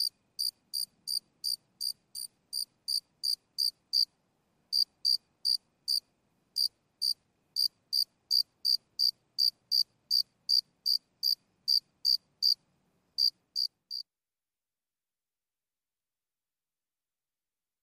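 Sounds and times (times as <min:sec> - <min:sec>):
cricket chirping: 0:00.0 - 0:04.1, 0:04.7 - 0:12.6, 0:13.2 - 0:14.0.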